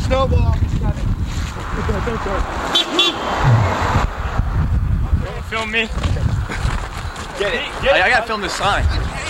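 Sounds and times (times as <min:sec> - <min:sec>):
speech: 0:00.1 - 0:01.0, 0:01.6 - 0:03.9, 0:05.5 - 0:06.2, 0:07.4 - 0:09.2
car approaching on snowy road: 0:01.5 - 0:05.4
short high toots: 0:03.4 - 0:04.1.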